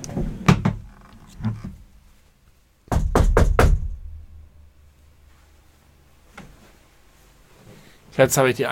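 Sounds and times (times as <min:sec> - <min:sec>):
knocking on a door: 0:02.9 - 0:04.0
speech: 0:08.2 - 0:08.7.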